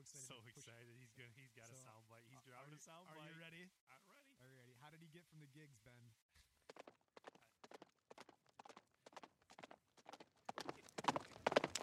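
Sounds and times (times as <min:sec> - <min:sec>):
speech: 0:00.0 - 0:06.9
horse hooves clip-clopping on a hard surface: 0:06.7 - 0:11.8.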